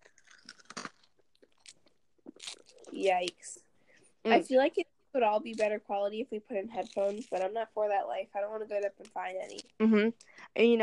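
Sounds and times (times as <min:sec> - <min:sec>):
crunchy biting and chewing: 0:00.0 - 0:03.4, 0:06.8 - 0:07.5
speech: 0:03.0 - 0:03.6, 0:04.2 - 0:10.8.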